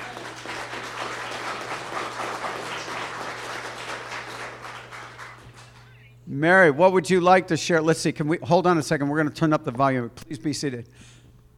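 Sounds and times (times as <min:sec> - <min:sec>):
crowd clapping: 0:00.0 - 0:06.0
faint low hum: 0:00.0 - 0:11.5
speech: 0:06.3 - 0:11.2.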